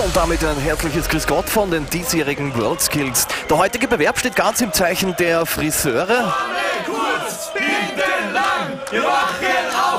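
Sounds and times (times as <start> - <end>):
speech: 0.0 - 7.0
audience cheering and shouting at a hairdressing competition: 0.0 - 9.9.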